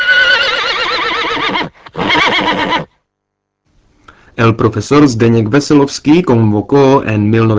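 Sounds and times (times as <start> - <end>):
Przewalski's horse neighing: 0.0 - 2.9
speech: 4.4 - 7.5.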